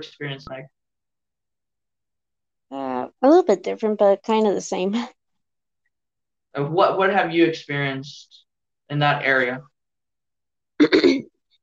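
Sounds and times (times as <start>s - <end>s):
speech: 0.0s - 0.8s, 3.2s - 5.2s, 6.6s - 9.7s
person clearing throat: 10.8s - 11.3s.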